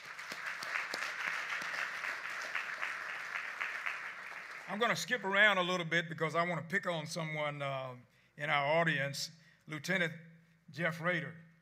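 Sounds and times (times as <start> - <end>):
audience applauding to thank care providers: 0.0 - 5.0
speech: 4.7 - 11.4.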